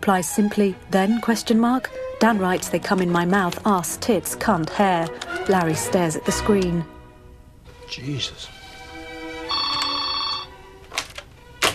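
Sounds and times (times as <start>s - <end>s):
speech: 0.0s - 6.9s, 7.9s - 8.6s
telephone ringing with bright electronic tone: 9.4s - 10.6s.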